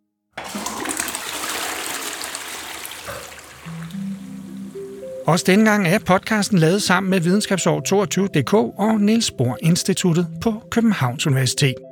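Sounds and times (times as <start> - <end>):
liquid trickling and splashing into a toilet bowl: 0.4 - 5.3
gurgling water in a toilet bowl: 0.4 - 5.9
speech: 5.3 - 11.9.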